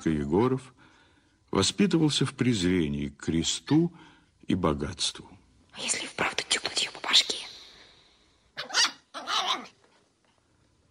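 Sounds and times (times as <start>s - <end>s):
speech: 0.0s - 0.9s, 1.5s - 6.5s
small dwarf dog barking and snarling: 8.6s - 9.8s.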